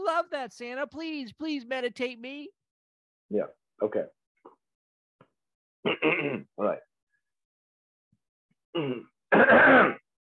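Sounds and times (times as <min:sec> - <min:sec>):
speech: 0:00.2 - 0:02.6, 0:03.3 - 0:04.2, 0:05.8 - 0:06.9, 0:08.7 - 0:10.0
man clearing his throat: 0:05.9 - 0:06.5, 0:08.8 - 0:10.1.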